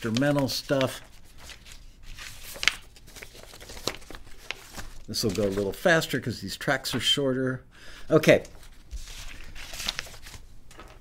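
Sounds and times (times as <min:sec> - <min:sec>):
speech: 0:00.0 - 0:01.1, 0:05.1 - 0:08.6
papers being shuffled: 0:00.0 - 0:06.0, 0:08.3 - 0:11.0.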